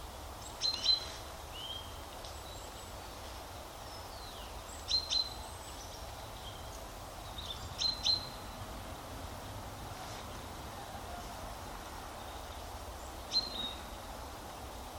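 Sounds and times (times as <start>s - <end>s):
steady background hiss: 0.0s - 14.9s
common chaffinch Fringilla coelebs calls: 3.9s - 8.5s, 12.2s - 14.0s.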